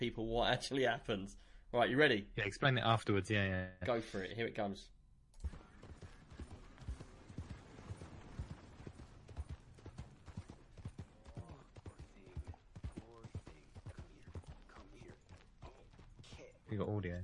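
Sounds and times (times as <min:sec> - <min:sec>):
speech: 0:00.0 - 0:05.6, 0:16.7 - 0:17.2
horse hooves clip-clopping on a muddy road: 0:05.4 - 0:16.5.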